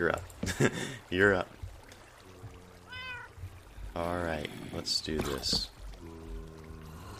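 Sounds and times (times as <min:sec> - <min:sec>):
speech: 0:00.0 - 0:01.6, 0:04.0 - 0:06.2
laughter: 0:00.4 - 0:01.0
cat meowing: 0:02.8 - 0:03.4.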